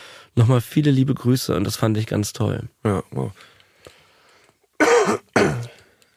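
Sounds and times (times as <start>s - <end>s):
speech: 0.4s - 3.6s
loud harsh coughs: 4.8s - 5.8s.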